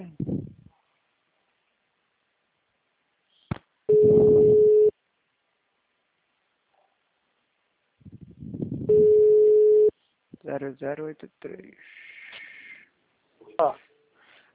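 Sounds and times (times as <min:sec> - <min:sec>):
steady low telephone tone during a phone call: 0:03.9 - 0:05.0, 0:08.9 - 0:10.0
speech: 0:10.6 - 0:12.1, 0:13.6 - 0:13.9.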